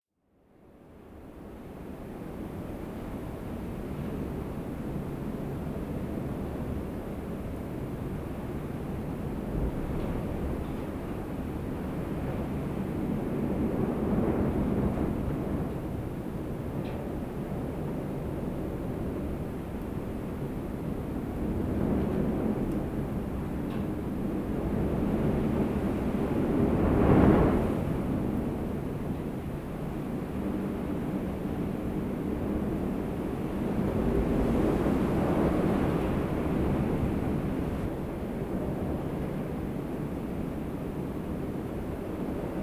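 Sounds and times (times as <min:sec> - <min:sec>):
wind outside: 0:00.2 - 0:42.6.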